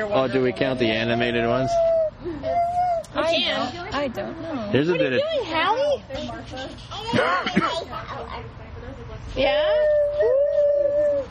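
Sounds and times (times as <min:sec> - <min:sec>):
speech: 0:00.0 - 0:08.6, 0:09.2 - 0:10.4
girl imitating a werewolf howl: 0:01.8 - 0:03.1, 0:09.6 - 0:11.2.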